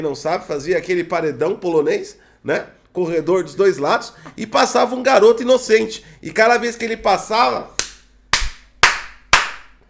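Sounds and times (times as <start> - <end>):
speech: 0.0 - 7.8
loud sharp hand slaps: 7.8 - 9.8.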